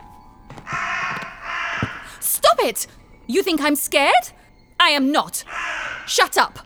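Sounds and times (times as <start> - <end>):
crow cawing: 0.0 - 6.6
speech: 2.6 - 6.6.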